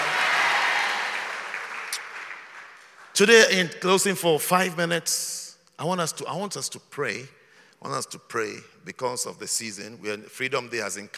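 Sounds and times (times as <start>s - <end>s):
audience applause: 0.0s - 3.4s
speech: 3.2s - 11.1s.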